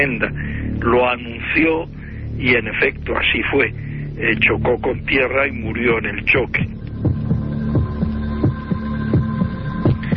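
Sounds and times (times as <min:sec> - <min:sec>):
speech: 0:00.0 - 0:06.8
constant hum: 0:00.0 - 0:10.1
heartbeat from a February 1961 spaceflight recording: 0:06.4 - 0:10.1.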